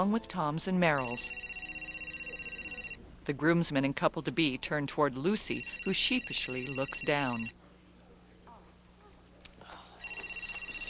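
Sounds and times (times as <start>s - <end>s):
speech: 0.0s - 1.5s, 3.2s - 7.6s
mobile phone ringing in bright pulsing electronic tones: 0.9s - 3.0s, 5.4s - 7.5s, 10.0s - 10.8s.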